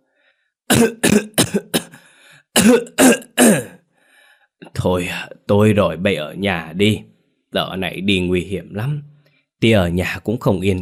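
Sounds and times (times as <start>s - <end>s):
elderly man coughing hard on a bamboo bed: 0.7s - 3.8s
speech: 0.8s - 1.6s, 2.6s - 3.7s, 4.7s - 10.8s.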